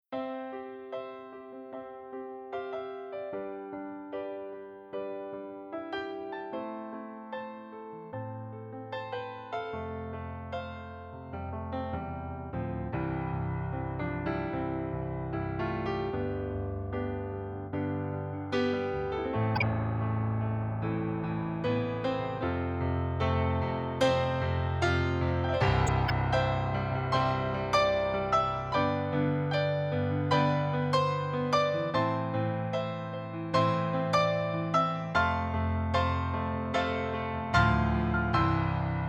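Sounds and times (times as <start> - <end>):
Nord Silver Grand digital piano: 0.0 - 39.0.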